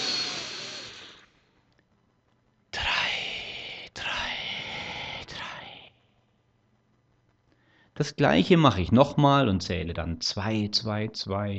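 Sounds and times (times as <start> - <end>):
deep breath in and out during a guided relaxation: 2.8 - 6.2, 7.5 - 8.0
speech: 8.0 - 11.5.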